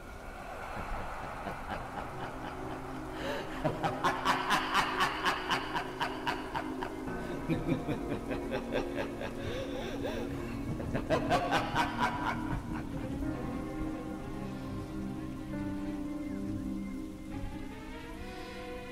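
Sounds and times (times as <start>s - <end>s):
steady rain falling: 0.0s - 18.9s
laughter: 0.7s - 15.3s.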